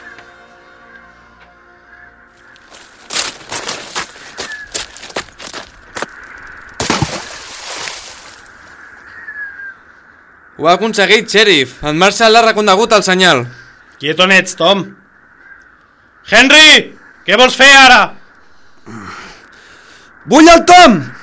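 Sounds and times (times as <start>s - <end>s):
running footsteps on a hard surface: 2.4s - 6.2s
splash into water: 6.8s - 8.5s
speech: 10.6s - 15.0s, 16.3s - 18.2s, 20.2s - 21.2s.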